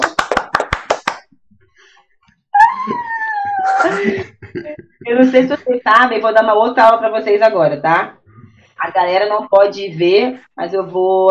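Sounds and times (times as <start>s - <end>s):
hands clapping in applause for a lesson: 0.0s - 1.3s
laughter: 2.7s - 5.8s
speech: 5.1s - 8.2s, 8.8s - 11.2s.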